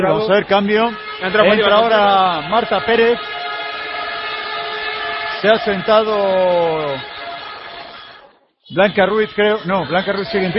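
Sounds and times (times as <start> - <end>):
speech: 0.0 - 3.4, 5.4 - 7.2, 8.7 - 10.5
loud air horn sounded by a spectator in the stands: 0.8 - 8.3.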